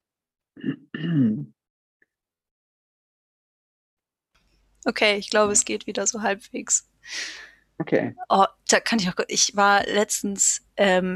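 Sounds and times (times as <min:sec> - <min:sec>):
person clearing throat: 0:00.6 - 0:01.6
speech: 0:01.0 - 0:01.6, 0:04.8 - 0:11.1.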